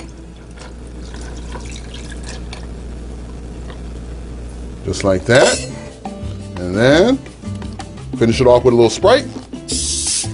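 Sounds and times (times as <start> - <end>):
cocktail of coconut rum and triple sec pouring into a glass: 0.0 - 2.7
speech: 4.9 - 5.7, 6.7 - 7.3, 8.2 - 9.8.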